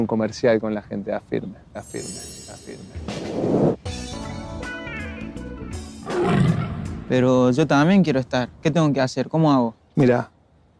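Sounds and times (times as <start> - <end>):
speech: 0.0 - 4.0, 7.1 - 10.3
music: 2.0 - 7.3
loud tiger roar: 6.0 - 7.0.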